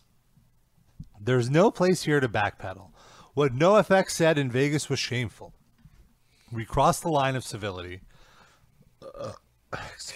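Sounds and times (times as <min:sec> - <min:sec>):
speech: 0:01.2 - 0:05.6, 0:06.5 - 0:08.1, 0:09.1 - 0:10.1
loud burps: 0:09.0 - 0:09.5.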